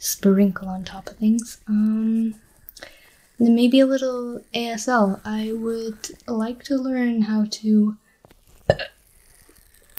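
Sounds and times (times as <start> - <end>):
speech: 0.0 - 8.0, 8.7 - 9.0
faint noise: 0.0 - 9.9
single small burp from a baby: 8.7 - 9.0.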